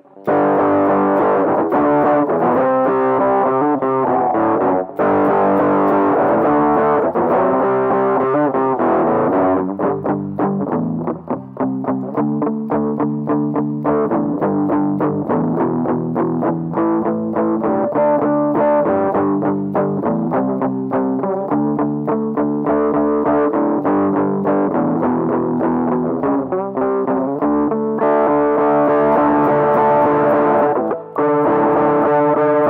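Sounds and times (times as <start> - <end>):
overdriven electric guitar strumming crunchy chords: 0.0 - 32.6.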